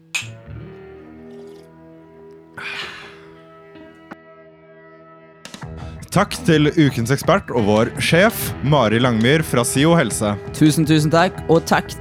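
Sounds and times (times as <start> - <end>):
glasses clinking together in a toast: 0.2 - 0.5
speech: 6.1 - 11.9.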